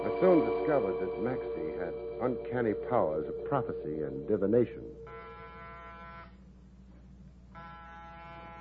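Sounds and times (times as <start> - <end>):
speech: 0.2 - 5.1
harsh electric door buzzer droning: 5.1 - 6.4, 7.6 - 8.5.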